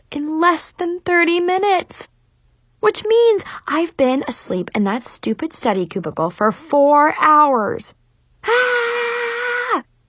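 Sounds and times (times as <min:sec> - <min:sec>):
speech: 0:00.1 - 0:02.1, 0:02.8 - 0:08.8
person screaming in frustration: 0:08.4 - 0:09.8.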